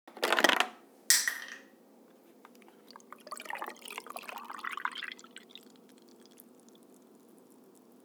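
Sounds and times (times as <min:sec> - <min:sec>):
drink being poured: 0:02.5 - 0:08.0.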